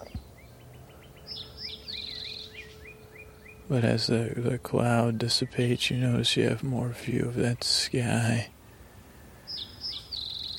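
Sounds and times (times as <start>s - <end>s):
birds chirping: 0.0s - 10.5s
soft outdoor hum on a cool misty day in Florida: 0.0s - 10.5s
speech: 3.7s - 8.6s.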